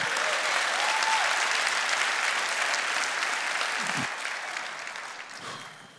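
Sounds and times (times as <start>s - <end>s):
audience applauding: 0.0s - 5.9s.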